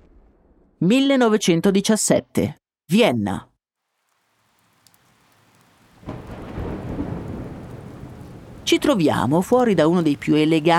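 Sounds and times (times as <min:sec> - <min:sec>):
speech: 0:00.8 - 0:03.5, 0:08.7 - 0:10.7
heavy rain: 0:03.8 - 0:10.7
low thunder rumbling: 0:05.1 - 0:10.7.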